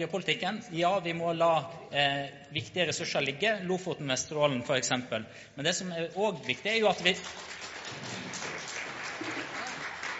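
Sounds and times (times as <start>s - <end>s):
speech: 0.0s - 8.2s
audience applause: 7.0s - 10.1s.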